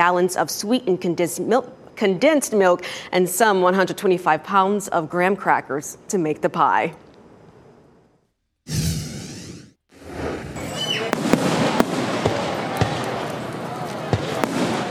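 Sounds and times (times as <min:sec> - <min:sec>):
speech: 0:00.0 - 0:07.0
fireworks whooshing burst outdoors: 0:08.7 - 0:12.6
crowd noise at fireworks display: 0:10.6 - 0:14.8
fireworks popping and banging outdoors: 0:11.1 - 0:13.4, 0:14.1 - 0:14.8.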